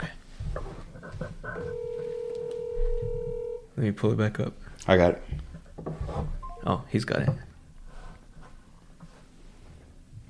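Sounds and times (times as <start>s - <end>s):
low noise: 0.0s - 10.2s
phone keypad tones: 1.6s - 3.6s, 6.4s - 6.8s
speech: 3.8s - 5.4s, 6.6s - 7.4s.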